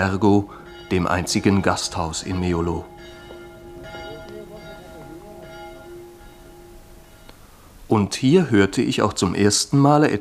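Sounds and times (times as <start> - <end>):
speech: 0.0 - 3.2, 7.9 - 10.2
small bell ringing on a village piazza in Meolo, Italy: 0.0 - 7.4.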